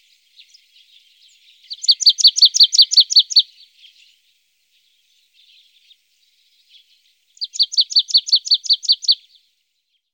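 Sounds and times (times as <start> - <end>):
marsh tit song of bright chipping notes in Germany, Austria or Switzerland: 0.0 - 4.2, 6.7 - 10.1.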